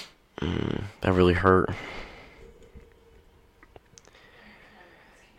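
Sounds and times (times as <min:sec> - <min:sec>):
man loud harsh retching: 0:00.3 - 0:01.1
man deliberately gagging and dry-heaving: 0:00.3 - 0:03.1
speech: 0:00.4 - 0:01.9.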